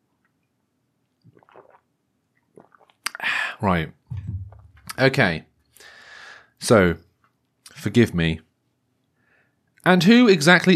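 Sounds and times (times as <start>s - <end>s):
slurping sip of tea: 1.3s - 1.9s, 2.6s - 3.2s
wet swallowing: 1.3s - 1.9s, 2.5s - 3.3s, 4.1s - 5.0s
mouth sounds: 3.0s - 5.1s
speech: 3.6s - 4.0s, 5.0s - 5.5s, 6.6s - 7.0s, 7.8s - 8.4s, 9.8s - 10.7s.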